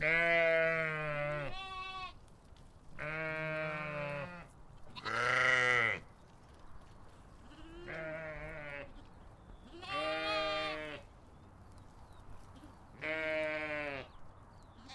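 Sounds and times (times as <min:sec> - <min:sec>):
sheep bleating on a farm: 0:00.0 - 0:02.2, 0:03.0 - 0:06.0, 0:07.5 - 0:09.0, 0:09.7 - 0:11.1, 0:13.0 - 0:14.1, 0:14.8 - 0:14.9.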